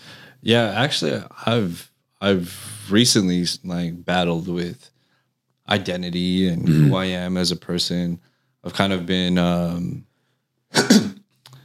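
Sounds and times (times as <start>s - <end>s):
short breath: 0.0s - 0.4s
speech: 0.4s - 5.0s, 5.7s - 10.1s, 10.7s - 11.2s
single harsh cough: 6.6s - 7.1s, 10.7s - 11.2s.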